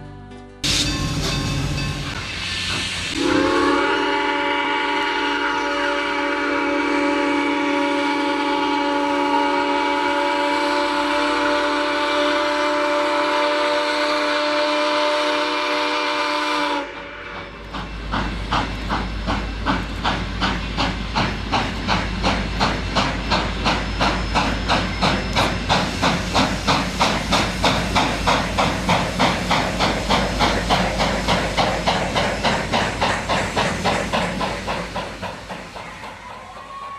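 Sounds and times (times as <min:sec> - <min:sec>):
steam train hissing steam: 0:00.6 - 0:36.9
steam train whistle: 0:03.1 - 0:17.6, 0:35.9 - 0:36.9.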